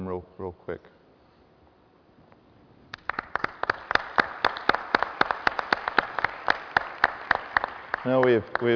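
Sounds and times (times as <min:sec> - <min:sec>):
speech: 0:00.0 - 0:01.0, 0:08.0 - 0:08.7
group of people applauding: 0:02.9 - 0:08.7.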